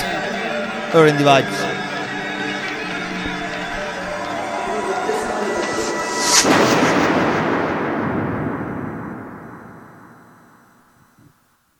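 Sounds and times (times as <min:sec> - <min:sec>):
crowd murmuring: 0:00.0 - 0:06.4
speech: 0:00.9 - 0:01.7
loud gunshot: 0:06.4 - 0:10.1.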